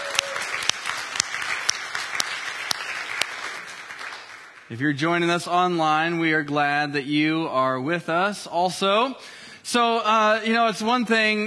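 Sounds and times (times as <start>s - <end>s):
church audience applauding: 0.0s - 4.7s
speech: 4.7s - 11.4s.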